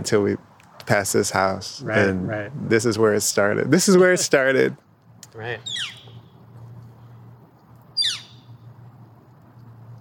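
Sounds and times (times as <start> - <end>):
speech: 0.0 - 6.0
high descending bird call: 5.6 - 6.4, 8.0 - 8.6.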